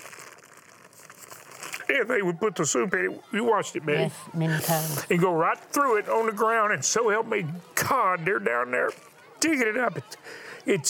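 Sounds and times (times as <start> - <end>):
plastic bag crinkling: 0.0 - 1.9
speech: 1.9 - 10.8.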